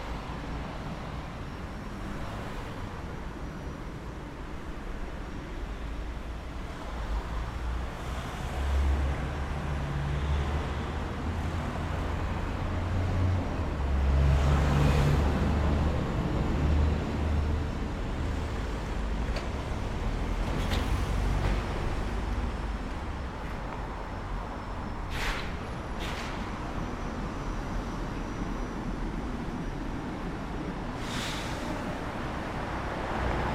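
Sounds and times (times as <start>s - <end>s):
low rumble of traffic on a residential road in Brighton: 0.0s - 33.5s
vehicles passing on a residential road in Brighton: 6.8s - 33.5s.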